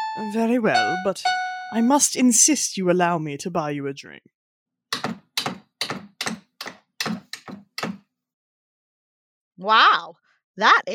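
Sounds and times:
speech: 0.2 - 4.3, 9.6 - 10.9
typewriter typing: 5.0 - 8.0.

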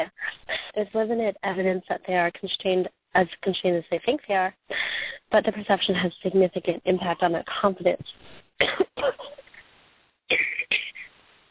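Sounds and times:
speech: 0.8 - 9.4, 10.3 - 10.8
coughing fit with harsh raspy coughs: 8.6 - 9.4.

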